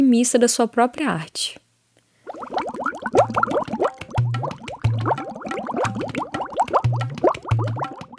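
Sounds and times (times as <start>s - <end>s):
speech: 0.0s - 1.6s
magic potion bubbling in a cauldron: 2.2s - 8.1s.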